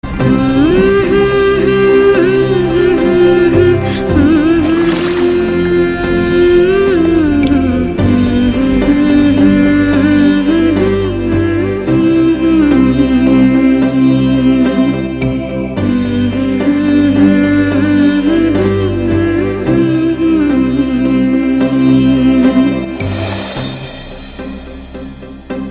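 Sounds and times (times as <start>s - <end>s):
Tamil children's music: 0.0s - 25.7s.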